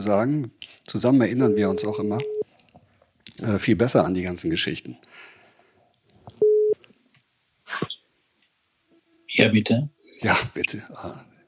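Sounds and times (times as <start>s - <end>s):
speech: 0.0s - 2.4s, 3.4s - 5.4s, 9.4s - 11.3s
single short electronic beep from a phone line as a call is placed: 1.5s - 2.4s, 6.4s - 6.8s.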